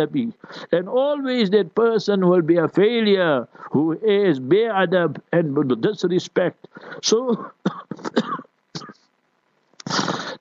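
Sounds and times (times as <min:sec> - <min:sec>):
speech: 0:00.0 - 0:09.0
man coughing and clearing his throat during a lecture: 0:07.3 - 0:09.1.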